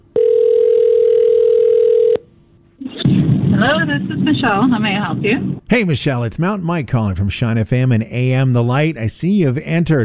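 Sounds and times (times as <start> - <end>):
telephone dial tone: 0.1 - 2.2
speech: 3.9 - 10.0.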